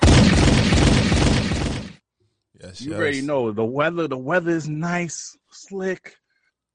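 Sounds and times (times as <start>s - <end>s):
gunshot sound effect: 0.0s - 2.0s
speech: 2.8s - 6.2s.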